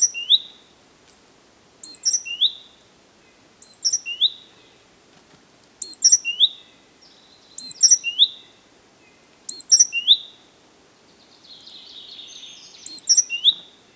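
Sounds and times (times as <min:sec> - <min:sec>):
Great tit Parus major chirping calls: 0:01.8 - 0:02.7, 0:03.6 - 0:04.8, 0:05.8 - 0:08.5, 0:09.1 - 0:10.4, 0:11.3 - 0:13.9.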